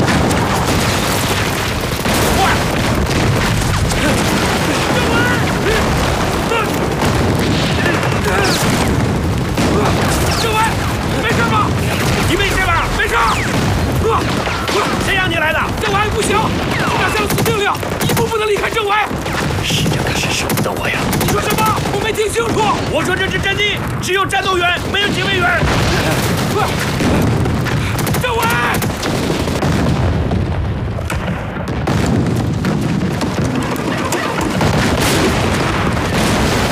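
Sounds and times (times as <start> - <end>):
crackling gunshots in wartime: 0.0 - 36.6
heavy artillery bombardment in wartime: 0.0 - 36.6
voices: 3.9 - 7.0, 7.6 - 8.9, 9.6 - 29.0, 33.8 - 34.6.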